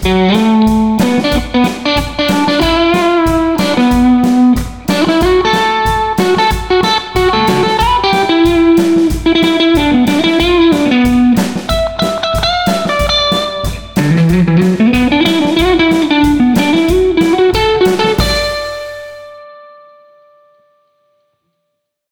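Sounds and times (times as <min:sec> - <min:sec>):
rock solo: 0:00.1 - 0:20.4.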